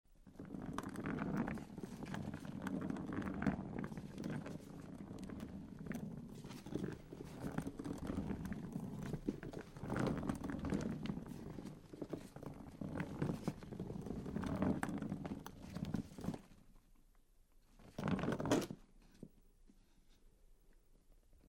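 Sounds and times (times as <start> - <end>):
suitcase on the floor in an airport: 0.2 - 16.7, 17.9 - 18.8.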